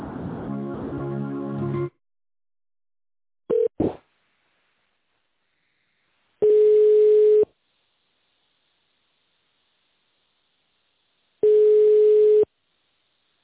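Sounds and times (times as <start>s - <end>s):
telephone ringback tone while a call is being transferred: 6.4s - 7.5s, 11.4s - 12.5s.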